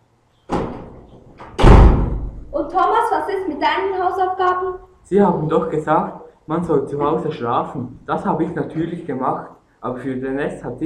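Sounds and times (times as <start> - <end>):
door opening with a rattling swish: 0.5 - 2.3
speech: 2.6 - 10.8.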